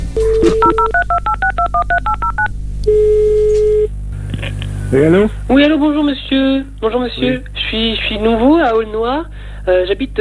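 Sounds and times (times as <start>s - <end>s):
touch-tone beeps of a telephone number being dialed: 0.2s - 3.9s
speech: 4.9s - 10.1s.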